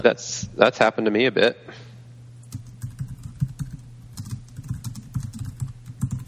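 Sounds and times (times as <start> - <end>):
speech: 0.0 - 1.9
heavy typing on a computer keyboard: 2.5 - 6.2.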